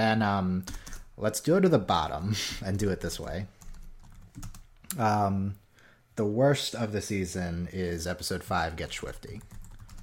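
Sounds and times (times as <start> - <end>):
speech: 0.0 - 3.6, 4.4 - 5.6, 6.2 - 9.6
typing on a computer keyboard: 0.7 - 1.1, 3.6 - 4.7, 9.1 - 10.0.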